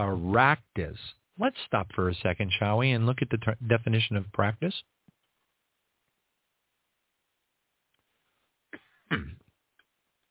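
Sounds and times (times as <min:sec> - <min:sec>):
speech: 0:00.0 - 0:04.9, 0:09.1 - 0:09.4
throaty coughs: 0:08.8 - 0:09.5.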